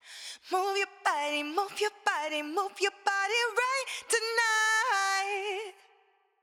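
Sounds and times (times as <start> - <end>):
processed vocals through a vocal chain with plate reverb: 0.2 - 6.0.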